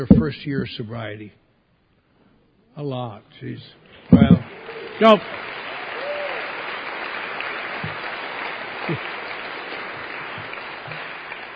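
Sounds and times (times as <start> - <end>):
speech: 0.0 - 1.4, 2.8 - 5.5, 8.9 - 9.1
room full of people at an AA meeting clapping: 3.9 - 11.5.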